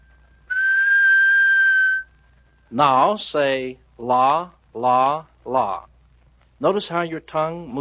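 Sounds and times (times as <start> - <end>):
plain mouth whistle holding one steady note: 0.0 - 2.1
speech: 2.7 - 5.9, 6.6 - 7.7.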